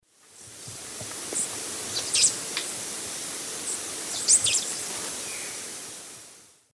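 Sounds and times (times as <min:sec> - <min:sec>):
Dacnis lineata feeding calls in the S. America Eastern Lowlands: 0:01.4 - 0:05.8.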